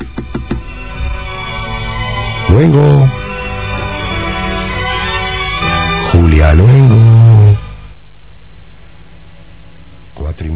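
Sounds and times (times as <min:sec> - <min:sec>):
knocking on a door: 0:00.0 - 0:00.7
low steady rumble: 0:00.0 - 0:10.5
speech: 0:02.6 - 0:03.2, 0:06.4 - 0:07.2.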